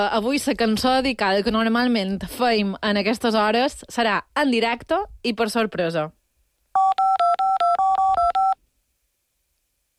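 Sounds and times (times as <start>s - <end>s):
speech: 0.0s - 6.2s
touch-tone beeps of a telephone number being dialed: 6.8s - 8.6s.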